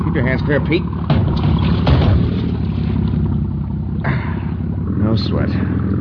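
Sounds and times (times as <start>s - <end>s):
motorboat engine churning in reverse while turning to port: 0.0s - 5.9s
speech: 0.1s - 1.4s, 5.2s - 5.9s.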